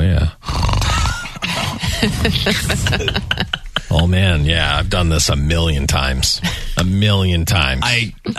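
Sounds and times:
father pretending to be asleep fake snoring: 0:00.2 - 0:03.2
laughter: 0:01.1 - 0:05.2
speech: 0:02.0 - 0:08.3.

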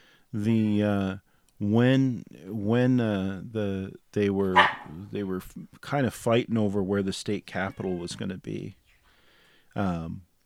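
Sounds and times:
speech: 0:00.3 - 0:08.8, 0:09.8 - 0:10.3
cat meowing: 0:07.6 - 0:08.2.

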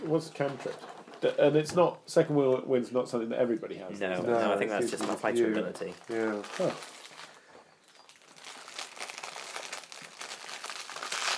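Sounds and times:
speech: 0:00.0 - 0:07.0
plastic packaging of fire cakes crinkling: 0:04.8 - 0:11.3.

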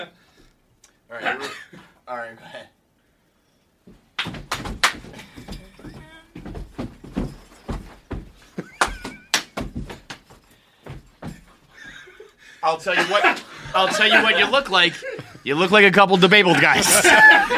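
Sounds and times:
speech: 0:00.0 - 0:00.2, 0:01.1 - 0:02.8, 0:12.6 - 0:17.5
heavy feet stomping on floor while dancing: 0:03.9 - 0:12.0
people laughing: 0:08.6 - 0:09.6, 0:11.8 - 0:17.5
excited voices: 0:12.6 - 0:17.5.

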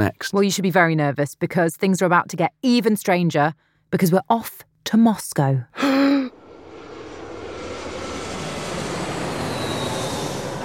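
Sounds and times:
speech: 0:00.0 - 0:06.2
airplane engine roar at an airport: 0:06.3 - 0:10.6.

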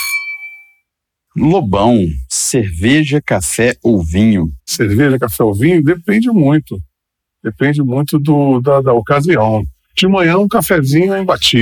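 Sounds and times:
glasses clinking in a toast: 0:00.0 - 0:00.8
speech: 0:01.4 - 0:11.6.

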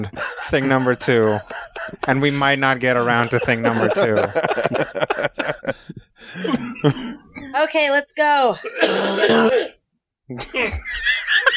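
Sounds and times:
speech: 0:00.0 - 0:05.4, 0:06.4 - 0:11.1
laughter: 0:00.0 - 0:07.2, 0:10.3 - 0:11.5
person coughing and clearing throat: 0:06.4 - 0:07.6, 0:08.7 - 0:09.8.

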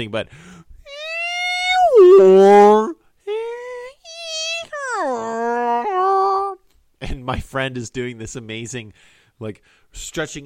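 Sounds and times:
speech: 0:00.0 - 0:00.7, 0:02.0 - 0:03.0, 0:07.3 - 0:10.4
human voice imitating whale song over a submarine's sound system: 0:00.9 - 0:06.6.

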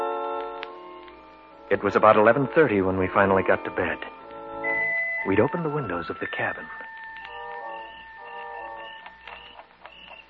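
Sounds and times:
alarm clock ticking: 0:00.0 - 0:10.2
speech: 0:01.7 - 0:04.2, 0:05.2 - 0:06.8
steady high-pitched drone: 0:04.6 - 0:09.2.

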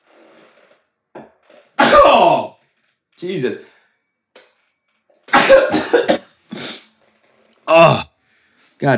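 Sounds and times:
loud sneeze with gasping buildup: 0:01.8 - 0:02.5, 0:05.3 - 0:06.8
speech: 0:03.2 - 0:03.7, 0:08.8 - 0:08.9.

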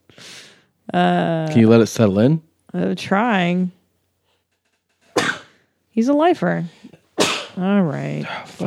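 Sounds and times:
speech: 0:00.9 - 0:03.8, 0:06.0 - 0:06.8, 0:07.6 - 0:08.6
person sneezing: 0:05.2 - 0:05.6, 0:07.2 - 0:07.6.

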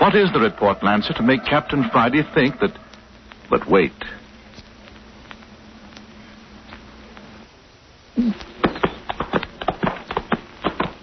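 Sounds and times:
speech: 0:00.0 - 0:02.8, 0:03.5 - 0:04.2
ridden horse's hooves clip-clopping at a walk: 0:08.5 - 0:11.0.

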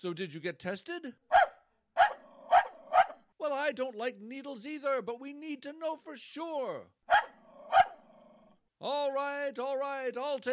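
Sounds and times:
speech: 0:00.0 - 0:01.5, 0:03.4 - 0:07.2, 0:08.8 - 0:10.5
dog barking: 0:01.3 - 0:03.2, 0:07.1 - 0:08.0
dog growling: 0:02.1 - 0:03.1, 0:07.4 - 0:08.6.

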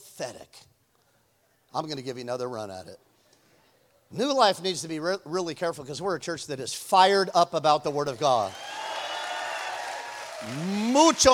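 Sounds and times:
speech: 0:00.2 - 0:00.7, 0:01.7 - 0:03.1, 0:04.1 - 0:08.6, 0:10.4 - 0:11.3
sparse polite clapping from seated audience: 0:08.1 - 0:11.3.

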